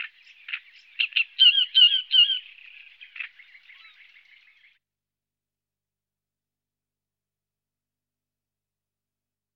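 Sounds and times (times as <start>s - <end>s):
great reed warbler song with harsh grating croaks: 0.0s - 4.8s.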